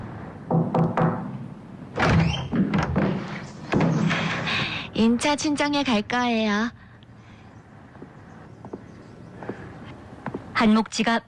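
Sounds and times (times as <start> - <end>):
faint room noise: 0.0 - 11.2
sharp knocks on a wooden door: 0.5 - 1.3
clunk and scrape of a door being opened: 1.9 - 4.6
speech: 5.0 - 6.8, 10.6 - 11.2.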